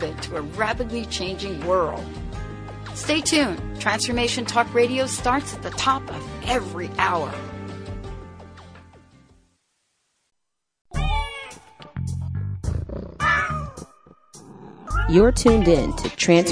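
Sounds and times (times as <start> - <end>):
speech: 0.0 - 2.4, 3.0 - 7.5, 15.1 - 16.5
cat meowing and yowling: 11.0 - 11.7, 13.1 - 13.9.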